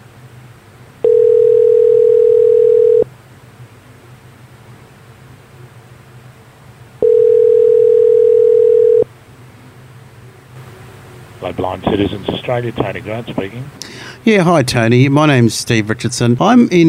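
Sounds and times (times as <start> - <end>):
telephone ringback tone as a call to a helpline is placed: 1.0 - 3.1, 7.0 - 9.1
speech: 11.6 - 16.8.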